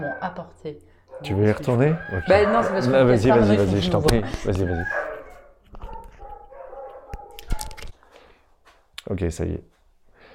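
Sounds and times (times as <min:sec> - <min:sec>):
dogs barking and yipping: 0:00.0 - 0:03.8, 0:04.4 - 0:07.9
speech: 0:00.0 - 0:05.1, 0:09.1 - 0:09.7.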